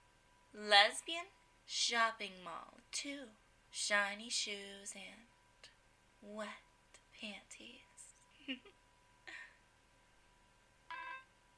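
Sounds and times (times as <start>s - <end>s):
speech: 0.6s - 5.3s, 6.2s - 6.6s, 7.2s - 7.9s, 8.5s - 8.8s
cell phone ringing with electronic tonal bursts: 10.9s - 11.3s.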